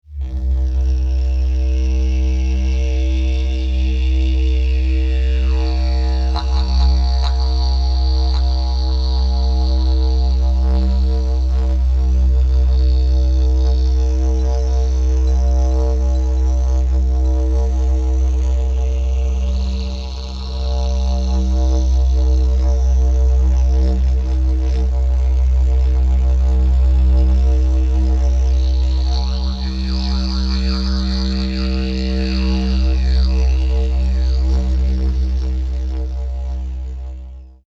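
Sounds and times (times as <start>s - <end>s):
didgeridoo: 0.0s - 37.6s.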